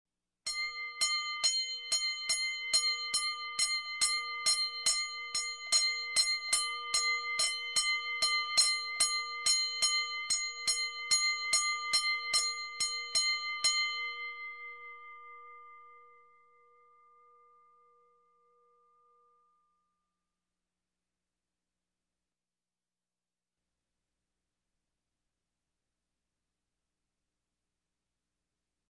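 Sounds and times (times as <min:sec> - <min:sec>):
small bell ringing: 0:00.5 - 0:19.8.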